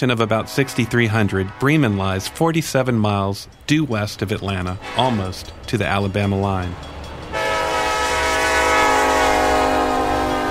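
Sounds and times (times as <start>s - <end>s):
speech: 0.0s - 6.9s
train whistle from a train passing through Bremen Georgia USA: 0.2s - 2.4s, 7.4s - 10.4s.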